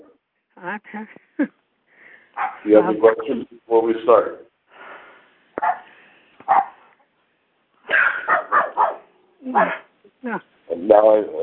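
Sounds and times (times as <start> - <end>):
speech: 0.6 - 1.6, 2.4 - 4.5, 9.5 - 11.4
dog barking: 2.4 - 2.7, 5.6 - 6.9, 7.9 - 9.9.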